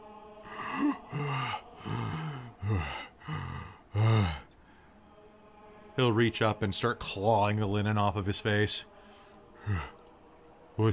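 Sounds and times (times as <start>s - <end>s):
person imitating the deep sucking breath of a reviving body: 0.4s - 4.5s, 9.6s - 10.0s
speech: 0.8s - 1.7s, 6.0s - 8.9s, 9.6s - 9.9s, 10.8s - 10.9s.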